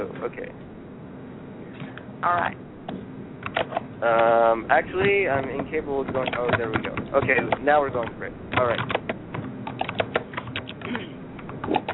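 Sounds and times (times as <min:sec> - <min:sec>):
speech: 0:00.2 - 0:00.8, 0:02.2 - 0:02.7, 0:03.6 - 0:09.0
fingers typing on a computer keyboard: 0:03.4 - 0:03.8, 0:05.3 - 0:11.9.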